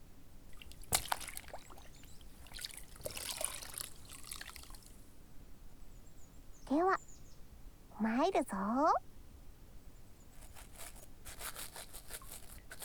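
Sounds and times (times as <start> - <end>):
water sloshing and trickling as an item is soaked: 0.4 - 5.1
speech: 8.0 - 9.1
item scrubbed with a brush in water: 10.4 - 12.8.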